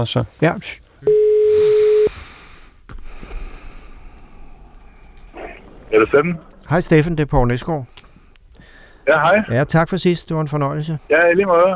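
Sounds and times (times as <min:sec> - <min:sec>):
speech: 0:00.0 - 0:01.1, 0:05.9 - 0:08.0, 0:09.0 - 0:11.7
loud steady telephone ringback tone: 0:01.0 - 0:02.1
quiet rustling: 0:02.4 - 0:11.7.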